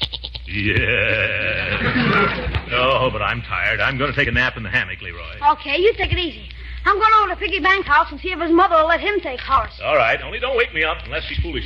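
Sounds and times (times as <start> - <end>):
goat bleating in a temporary goat pen: 0.0 - 2.1
speech: 0.5 - 2.4, 3.0 - 11.6
laughter: 0.5 - 4.1.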